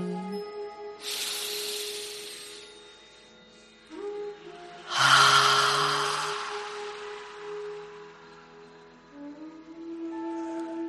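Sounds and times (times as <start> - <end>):
soft sustained tones of music: 0.0 - 10.8
slow breathing during a guided relaxation exercise: 1.0 - 3.9, 4.8 - 8.7.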